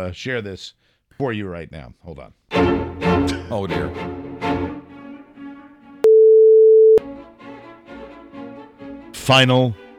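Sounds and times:
speech: 0.0s - 4.7s, 9.3s - 9.8s
loud steady censor bleep: 6.0s - 7.0s.

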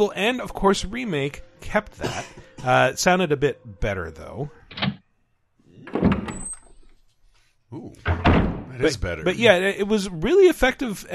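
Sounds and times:
speech: 0.0s - 4.9s, 7.7s - 11.1s
door creaking open, game sound effect: 4.7s - 5.1s, 5.8s - 6.9s, 8.0s - 8.8s.

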